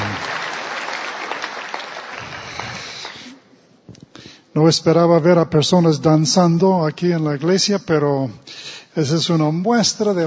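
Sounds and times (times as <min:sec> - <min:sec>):
church congregation applauding: 0:00.0 - 0:03.4
speech: 0:04.6 - 0:10.2.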